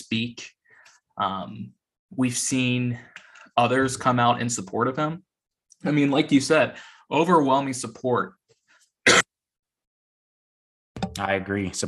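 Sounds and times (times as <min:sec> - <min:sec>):
speech: 0:00.1 - 0:00.6, 0:01.2 - 0:08.4, 0:11.2 - 0:11.8
person coughing: 0:09.1 - 0:09.3.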